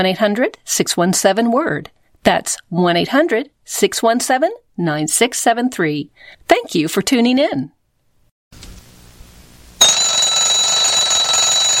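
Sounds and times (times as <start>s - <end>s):
speech: 0.0s - 7.8s
alarm clock bell ringing: 9.8s - 11.7s.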